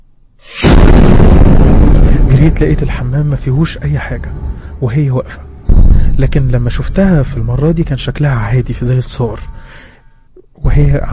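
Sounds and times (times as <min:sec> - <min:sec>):
big explosion sound effect: 0:00.6 - 0:08.1
speech: 0:02.4 - 0:05.5, 0:06.2 - 0:09.9, 0:10.6 - 0:11.1.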